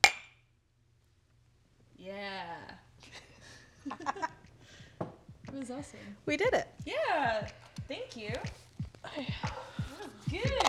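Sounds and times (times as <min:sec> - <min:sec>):
drinking glasses clinking in a toast: 0:00.0 - 0:00.4
speech: 0:05.7 - 0:10.6.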